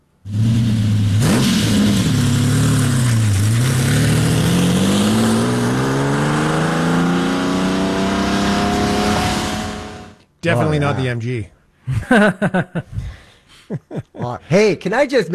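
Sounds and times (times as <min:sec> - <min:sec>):
Lamborghini Countach sports car engine starting and revving: 0:00.3 - 0:10.2
speech: 0:10.4 - 0:13.1, 0:13.7 - 0:15.3
laughter: 0:11.9 - 0:13.0, 0:13.7 - 0:14.5.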